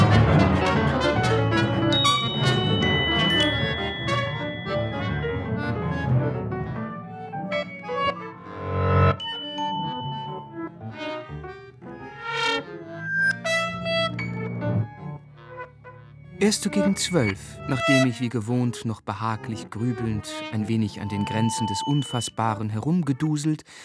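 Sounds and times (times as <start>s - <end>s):
short instrumental music interlude: 0.0s - 22.7s
sparse electronic-sounding tones: 1.9s - 18.2s, 20.5s - 22.7s
speech: 16.5s - 23.8s.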